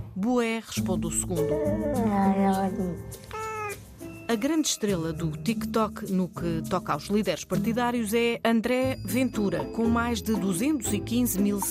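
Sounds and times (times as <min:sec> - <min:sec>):
speech: 0:00.2 - 0:03.4, 0:04.3 - 0:11.6
two cats meowing: 0:03.3 - 0:03.8.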